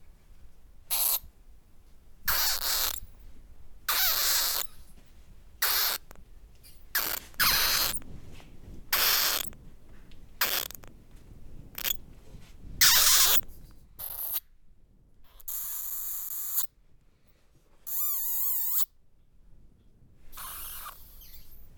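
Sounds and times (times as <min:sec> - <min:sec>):
several bats squeaking inside a small cave: 0:00.9 - 0:01.2, 0:02.3 - 0:03.0, 0:03.9 - 0:04.8, 0:05.6 - 0:06.1, 0:06.7 - 0:08.0, 0:08.9 - 0:09.5, 0:10.4 - 0:10.9, 0:11.8 - 0:12.0, 0:12.8 - 0:13.4, 0:15.4 - 0:16.7, 0:17.9 - 0:18.9, 0:20.4 - 0:21.6.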